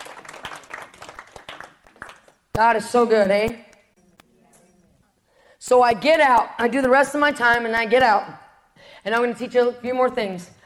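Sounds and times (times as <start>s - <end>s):
audience applause: 0.0s - 2.4s
speech: 2.6s - 3.7s, 5.7s - 8.4s, 9.0s - 10.6s.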